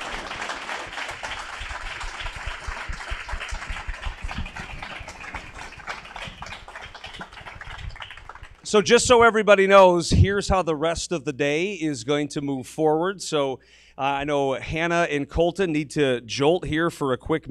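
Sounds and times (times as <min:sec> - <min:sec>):
audience applause: 0:00.0 - 0:08.6
speech: 0:08.7 - 0:17.4.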